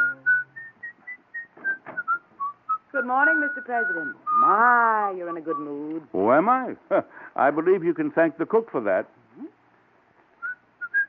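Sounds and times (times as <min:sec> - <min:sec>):
person whistling a tune: 0:00.0 - 0:04.6, 0:05.3 - 0:05.9, 0:10.4 - 0:11.0
speech: 0:03.0 - 0:09.2.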